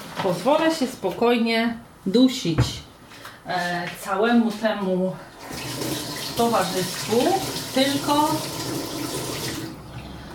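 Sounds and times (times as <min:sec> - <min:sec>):
speech: 0:00.2 - 0:08.8
water being poured into cooking pot: 0:05.4 - 0:10.3.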